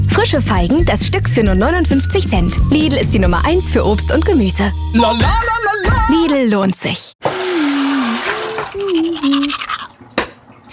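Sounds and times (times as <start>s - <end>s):
speech: 0.2s - 7.2s
running tap water: 7.2s - 10.7s
person humming a wandering tune: 7.4s - 9.8s
toothbrush scrubbing with toothpaste: 7.4s - 9.9s.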